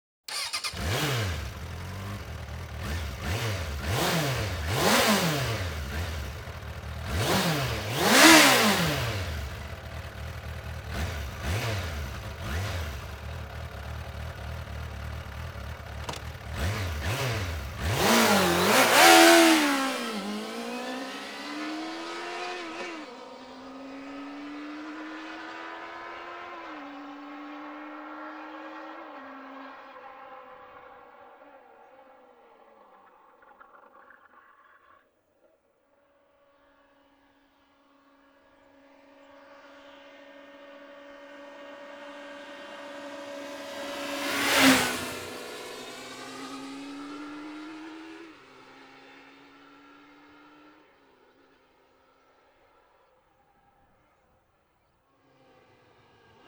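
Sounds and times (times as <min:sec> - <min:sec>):
Suzuki GSX 600 F motorcycle engine: 0:00.3 - 0:23.9, 0:41.6 - 0:49.4.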